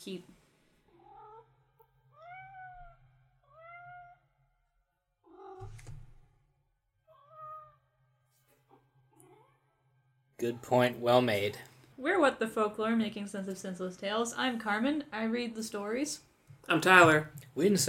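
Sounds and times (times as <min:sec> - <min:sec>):
speech: 0:00.0 - 0:00.4, 0:10.4 - 0:17.8
cat meowing: 0:01.0 - 0:01.5, 0:02.1 - 0:04.3, 0:05.2 - 0:05.8, 0:07.1 - 0:07.9, 0:09.2 - 0:09.7
brief thump: 0:05.6 - 0:06.3.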